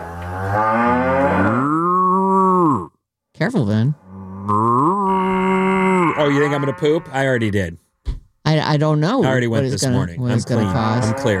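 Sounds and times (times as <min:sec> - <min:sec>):
person imitating a cow mooing: 0:00.4 - 0:03.0, 0:04.0 - 0:07.4, 0:10.3 - 0:11.3
speech: 0:03.4 - 0:04.9, 0:06.3 - 0:07.8, 0:08.5 - 0:11.3.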